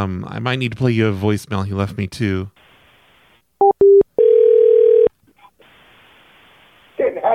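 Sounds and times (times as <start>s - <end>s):
speech: 0.0s - 2.7s
telephone beeps as a call back is placed: 3.6s - 5.1s.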